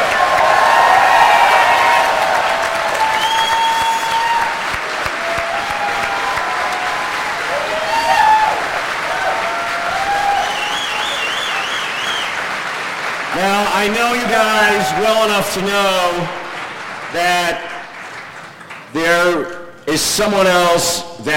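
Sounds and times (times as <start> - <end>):
whoops and cheers: 0.0 - 12.3, 14.1 - 15.3
large crowd clapping: 0.0 - 20.2
speech: 14.6 - 16.4, 17.1 - 17.6, 19.0 - 21.3.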